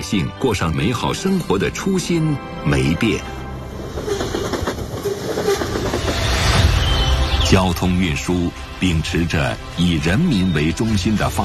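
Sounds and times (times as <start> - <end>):
speech: 0.1 - 3.4, 7.5 - 11.4
green slow passenger train in China rumbling along tracks: 0.9 - 11.4
passenger train wheels clacking over rail joints: 3.8 - 6.6.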